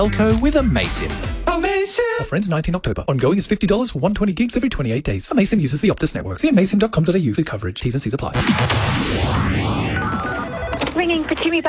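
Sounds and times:
music: 0:00.0 - 0:02.5
speech: 0:00.0 - 0:09.5
telephone ringing: 0:10.0 - 0:11.6.

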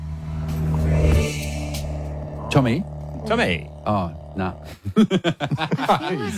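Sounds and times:
old car engine rumbling driving past: 0:00.0 - 0:04.7
speech: 0:02.6 - 0:06.3
laughter: 0:04.8 - 0:06.3.

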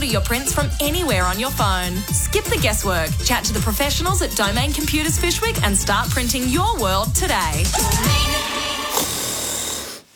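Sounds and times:
speech: 0:00.0 - 0:08.7
person snoring: 0:07.7 - 0:10.1.

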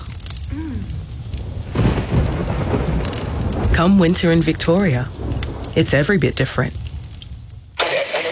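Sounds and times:
heavy rain pouring: 0:00.0 - 0:08.2
thunder rolling: 0:00.5 - 0:06.4
speech: 0:00.6 - 0:01.0, 0:03.8 - 0:05.2, 0:05.8 - 0:06.8.

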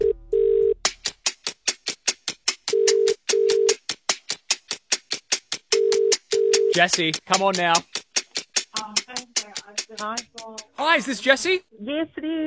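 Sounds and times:
outgoing phone call ringing tone: 0:00.0 - 0:00.8, 0:02.7 - 0:03.8, 0:05.7 - 0:06.8
sharp ticking clicks: 0:00.9 - 0:11.5
speech: 0:06.8 - 0:07.9, 0:10.0 - 0:12.4.

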